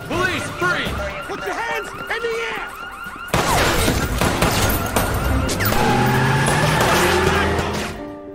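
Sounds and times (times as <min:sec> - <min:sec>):
car engines roaring in a film car chase: 0:00.0 - 0:08.2
car tires screeching in a film car chase: 0:03.8 - 0:08.1.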